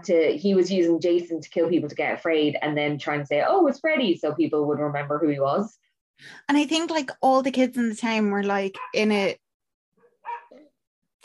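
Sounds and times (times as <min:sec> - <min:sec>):
speech: 0:00.0 - 0:09.4
dog barking outside a window: 0:08.8 - 0:09.1, 0:10.0 - 0:10.8.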